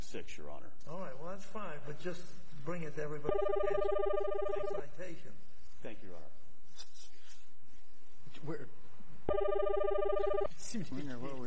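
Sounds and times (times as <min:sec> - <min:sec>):
speech: 0:00.1 - 0:06.9, 0:08.4 - 0:11.4
steady electronic telephone ring tone: 0:03.3 - 0:04.8, 0:09.3 - 0:10.6.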